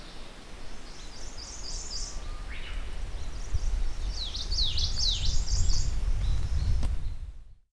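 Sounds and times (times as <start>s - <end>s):
Ijima's leaf warbler song: 0.0s - 7.2s.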